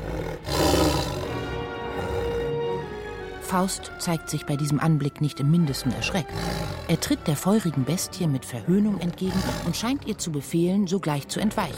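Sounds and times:
tiger roaring: 0.0 - 3.4, 5.9 - 7.5, 8.9 - 10.3
speech: 3.5 - 11.7.

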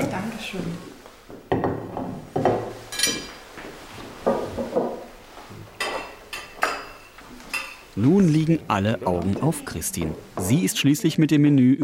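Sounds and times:
speech: 0.2 - 0.9, 8.0 - 11.8
dishes and cutlery clinking and clattering: 1.5 - 3.6, 4.2 - 8.2.

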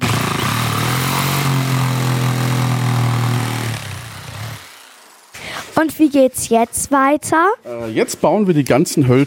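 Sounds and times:
power tool cutting a door opening into a small wooden house: 0.0 - 5.8
speech: 5.8 - 9.2.

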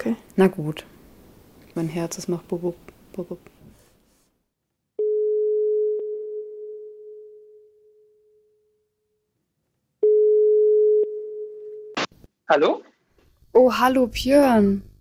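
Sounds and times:
speech: 0.0 - 1.0, 1.8 - 3.6, 12.5 - 12.9, 13.6 - 14.9
telephone ringback tone of a call placed from a mobile phone: 5.0 - 7.7, 10.0 - 12.0.

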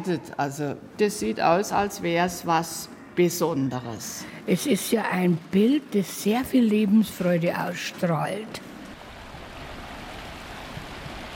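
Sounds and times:
speech: 0.0 - 8.7
river flowing through Munich fed from Alpine sources: 4.2 - 11.3.

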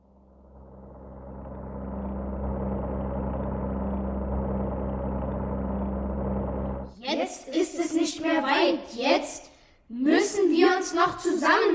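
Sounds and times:
propeller airplane engine droning: 0.0 - 6.9
speech: 7.4 - 11.7.

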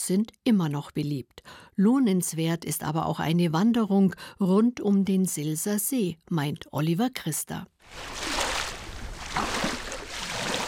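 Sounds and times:
speech: 0.0 - 8.4
waves washing against a lake shore: 7.8 - 10.6.

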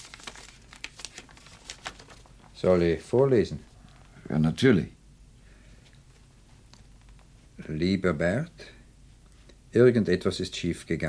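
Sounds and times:
paper tearing: 0.0 - 2.3
letter envelope being carefully opened: 0.0 - 2.6
paper crinkling and rustling: 0.0 - 4.2, 6.1 - 7.3
speech: 2.6 - 3.7, 4.3 - 5.0, 7.7 - 8.7, 9.7 - 11.0.

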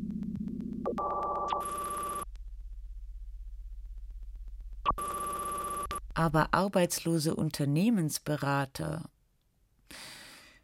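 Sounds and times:
low buzzing hum: 0.0 - 6.6
telephone bell ringing with electronic tones: 1.0 - 2.3, 5.0 - 6.0
speech: 6.2 - 9.1.

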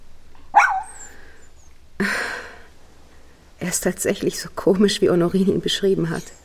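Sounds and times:
small light-brown dog barking: 0.5 - 1.1
speech: 3.7 - 6.4.

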